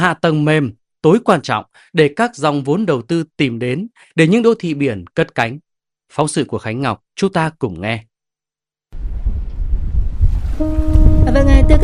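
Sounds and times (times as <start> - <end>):
speech: 0.0 - 8.1, 10.6 - 11.8
wind blowing across the deck of a navy ship at sea: 9.0 - 11.8.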